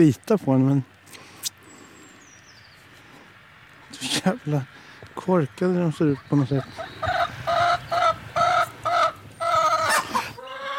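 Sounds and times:
speech: 0.0 - 1.0, 4.2 - 7.1
laying hen clucking in a coop: 5.6 - 10.7.

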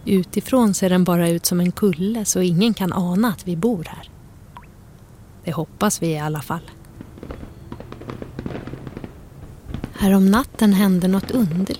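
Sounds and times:
speech: 0.0 - 4.2, 5.5 - 6.8, 10.0 - 11.7
fireworks banging and crackling at night over a snowy landscape: 6.6 - 11.7.

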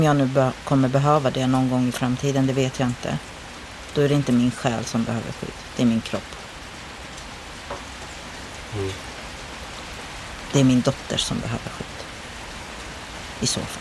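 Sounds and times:
speech: 0.0 - 3.3, 3.9 - 6.4, 8.7 - 9.1, 10.5 - 12.0, 13.4 - 13.7
rain falling outdoors on a veranda: 0.0 - 13.7
murmur: 8.7 - 9.1.

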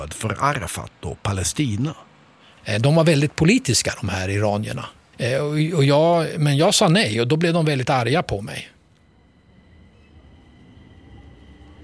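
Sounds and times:
speech: 0.0 - 8.8
faint high whine: 0.0 - 11.8
subway train in motion heading to the central station: 8.5 - 11.8.

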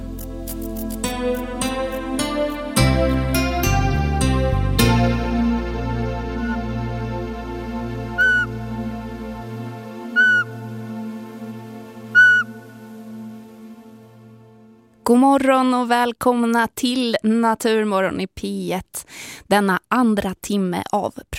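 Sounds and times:
sustained instrumental music backdrop: 0.0 - 15.0
speech: 1.2 - 1.6, 15.1 - 21.3
owl calling during its breeding season: 6.4 - 6.6, 8.2 - 8.6, 10.1 - 10.6, 12.1 - 13.0.

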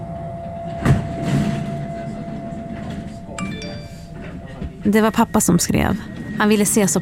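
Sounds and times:
subway train rumbling: 0.0 - 7.0
bright metallic squeal: 1.1 - 7.0
speech: 4.8 - 7.0.

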